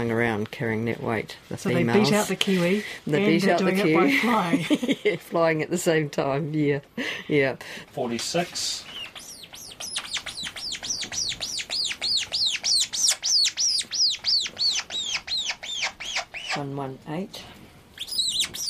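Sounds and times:
speech: 0.0s - 9.0s, 16.6s - 17.5s
birds chirping while being fed: 8.6s - 16.8s, 18.0s - 18.6s.

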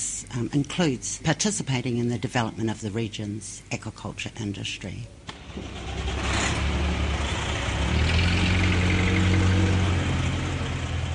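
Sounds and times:
speech: 0.3s - 5.9s
heavy truck engines idling and rumbling: 5.3s - 11.1s
vehicle pulling through: 5.3s - 11.1s.

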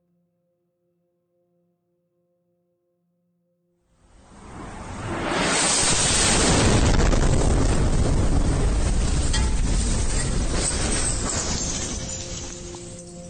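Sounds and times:
missile strike explosions in a capital city in wartime: 4.2s - 13.1s.

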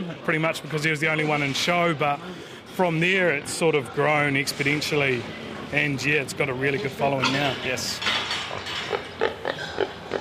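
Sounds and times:
speech: 0.1s - 9.0s
large pig grunting and oinking at an agricultural show pig competition: 8.5s - 10.2s.

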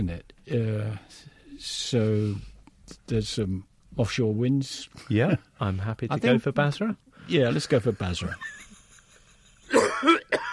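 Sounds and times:
speech: 0.0s - 8.6s
rough coughs as a wrong quiz answer sound effect: 9.7s - 10.5s.

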